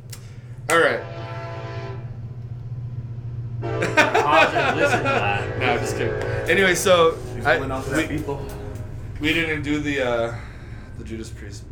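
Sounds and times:
passing train rumbling: 0.2 - 11.7
speech: 0.7 - 1.1, 4.5 - 8.6, 9.2 - 11.7
train horn blaring: 0.7 - 2.3, 3.5 - 10.2
laughter: 3.6 - 8.3.

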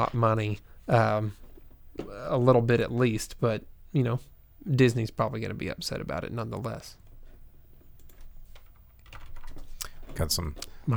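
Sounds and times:
speech: 0.0 - 1.4, 2.0 - 7.0, 10.2 - 10.9
low steady hum: 0.0 - 10.9
keyboard clicks from typing at a computer: 7.8 - 10.8.

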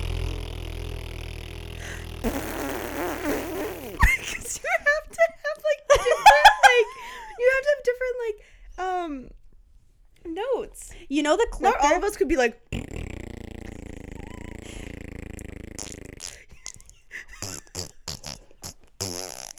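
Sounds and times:
wet sputtering fart noises blown with the mouth: 0.0 - 4.7, 12.7 - 19.5
speech: 2.2 - 2.6, 7.8 - 9.4, 10.3 - 12.6
laughter: 4.0 - 7.4.

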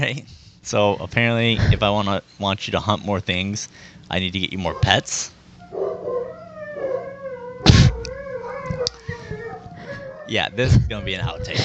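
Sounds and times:
speech: 0.0 - 5.4, 10.3 - 11.6
dogs howling: 4.5 - 11.6
dog barking: 5.7 - 7.1.

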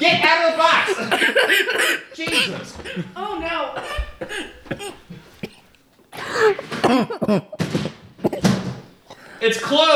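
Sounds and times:
loud bursts of laughter: 0.7 - 7.6
coughing fit after laughing: 0.8 - 9.9.

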